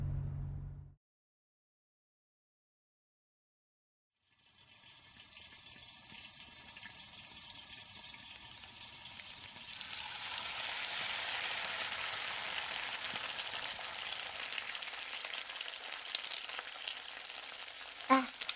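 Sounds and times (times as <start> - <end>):
food frying in a pan during home cooking: 4.2 - 18.5.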